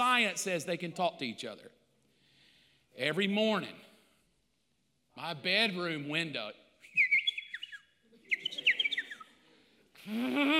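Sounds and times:
speech: 0.2 - 1.8, 3.0 - 3.9, 5.2 - 6.6, 10.1 - 10.5
person mimicking a bird's call: 7.0 - 9.4.

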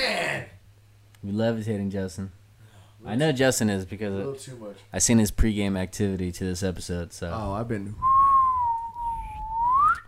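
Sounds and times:
speech: 1.2 - 2.4, 3.0 - 8.2
person whistling: 8.0 - 10.0.

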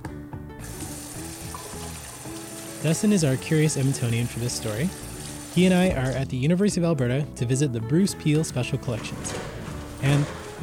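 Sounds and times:
water running from a sink tap: 0.6 - 6.3
speech: 2.8 - 10.6.

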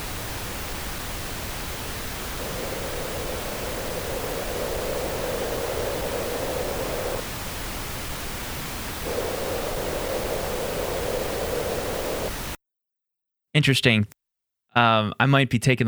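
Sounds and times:
pink noise through boxy cardboard-box reverb effect: 0.0 - 12.6
speech: 13.6 - 14.2, 14.8 - 15.8.

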